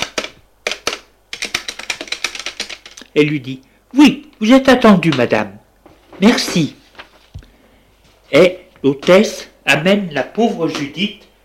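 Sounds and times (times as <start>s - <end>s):
keys tapped as a name is typed on a keyboard: 0.0s - 3.1s
speech: 3.1s - 5.6s, 6.2s - 6.8s, 8.3s - 11.2s.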